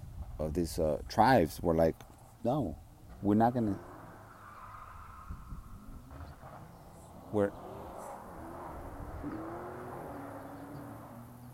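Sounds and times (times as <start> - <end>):
speech: 0.4 - 3.9, 7.3 - 7.6
car passing by outside with low engine rumble: 3.1 - 11.5.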